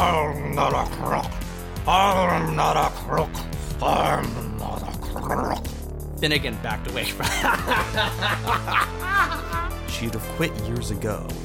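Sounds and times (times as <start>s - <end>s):
speech: 0.0s - 11.4s
person imitating a dog growl: 2.1s - 5.7s
laughter: 7.0s - 9.8s.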